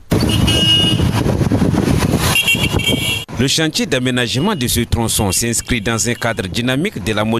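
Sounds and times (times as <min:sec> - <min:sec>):
rumble of cars and trucks on a busy street in N'Djamena: 0:00.0 - 0:07.3
car horn toots and tonal honks: 0:00.1 - 0:01.2, 0:02.2 - 0:03.3, 0:04.3 - 0:06.7
speech: 0:03.4 - 0:07.3.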